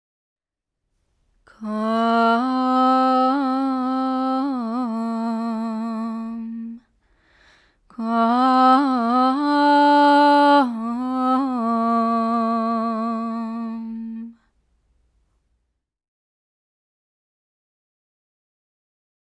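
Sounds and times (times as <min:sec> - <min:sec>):
female vocal: 0:01.5 - 0:06.9, 0:07.9 - 0:14.4.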